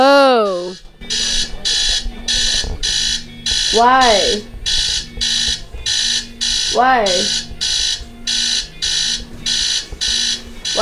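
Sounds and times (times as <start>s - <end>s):
electronic alarm beeping: 0.5s - 10.7s
speech: 3.7s - 4.6s, 6.8s - 7.5s.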